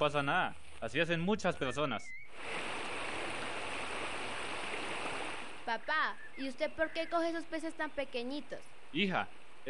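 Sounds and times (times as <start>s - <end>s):
speech: 0.0s - 2.7s, 5.7s - 9.6s
flowing creek water: 2.3s - 5.8s.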